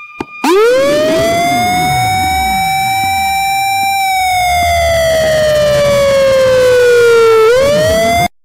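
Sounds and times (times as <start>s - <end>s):
siren wailing: 0.4s - 8.4s.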